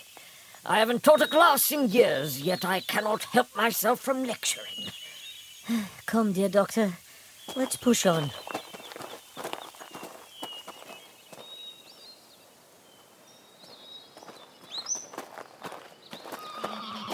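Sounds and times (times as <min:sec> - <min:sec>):
speech: 0:00.6 - 0:05.0, 0:05.7 - 0:08.5
faint bird chirps: 0:01.1 - 0:17.1
mountain horse hooves clip-clopping: 0:07.5 - 0:12.1, 0:13.6 - 0:17.1
mountain horse neighing: 0:16.4 - 0:17.1.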